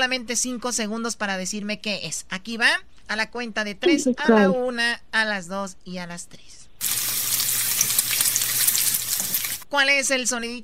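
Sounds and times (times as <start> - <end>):
speech: 0.0 - 7.0, 9.7 - 10.6
food frying in a pan: 6.8 - 9.7.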